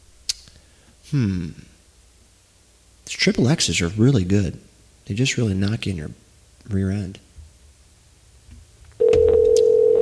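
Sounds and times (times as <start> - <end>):
speech: 1.1 - 1.7, 3.2 - 7.3
telephone call ringing tone: 9.0 - 10.0.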